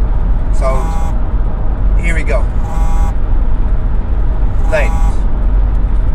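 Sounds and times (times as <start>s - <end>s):
road noise inside a moving car: 0.0s - 6.1s
high electronic tone: 0.6s - 1.2s, 2.6s - 3.2s, 4.6s - 5.3s.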